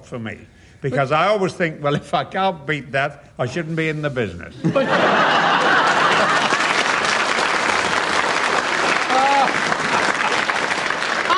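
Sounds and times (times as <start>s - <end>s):
speech: 0.1s - 6.5s
people laughing: 4.6s - 6.9s, 9.0s - 10.8s
large crowd applauding: 5.3s - 11.3s.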